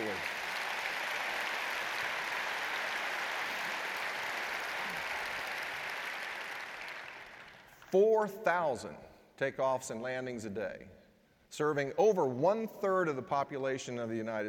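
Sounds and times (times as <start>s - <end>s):
large crowd applauding: 0.0s - 7.8s
speech: 7.9s - 14.4s.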